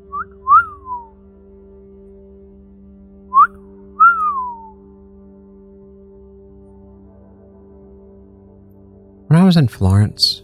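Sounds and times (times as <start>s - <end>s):
person whistling a two-note call: 0.1s - 1.1s, 3.4s - 4.7s
speech: 9.5s - 10.4s.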